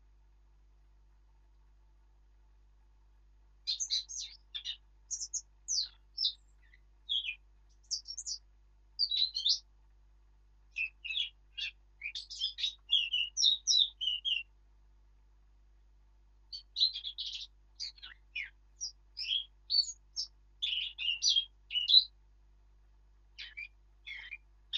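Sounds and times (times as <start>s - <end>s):
Eurasian blackcap Sylvia atricapilla song: 3.7s - 8.4s, 9.0s - 9.6s, 10.7s - 14.5s, 16.5s - 22.1s, 23.4s - 24.7s.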